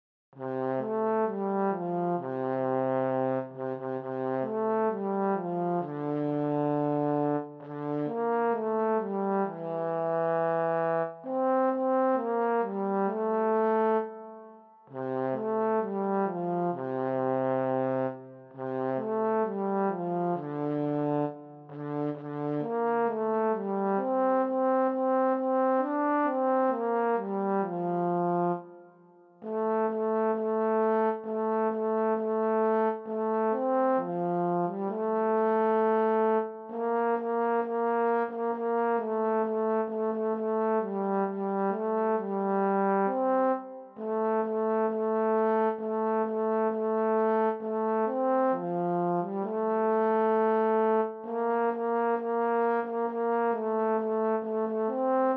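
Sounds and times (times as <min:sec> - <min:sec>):
solo trombone playing a Christmas tune: 0:00.4 - 0:55.3.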